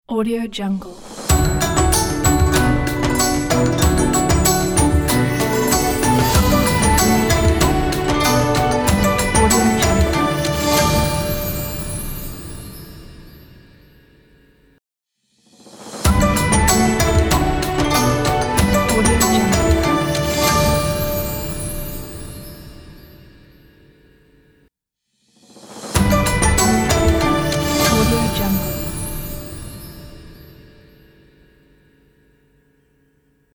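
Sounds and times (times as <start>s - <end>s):
Asian-style logo jingle: 1.3s - 13.0s, 16.1s - 22.7s, 26.0s - 30.2s.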